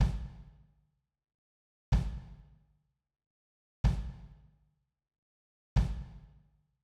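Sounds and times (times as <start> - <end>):
kick drum plate: 0.0 - 0.5, 1.9 - 2.5, 3.8 - 4.4, 5.8 - 6.4.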